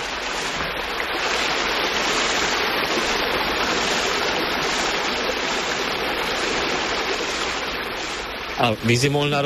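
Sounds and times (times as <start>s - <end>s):
water babbling and rushing at the end of a mill race: 0.0s - 9.4s
speech: 8.6s - 9.4s.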